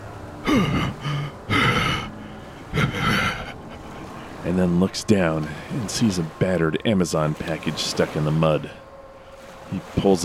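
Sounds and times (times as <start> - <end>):
man panting after swimming out of a lake: 0.4 - 4.2
speech: 4.5 - 8.8, 9.7 - 10.2.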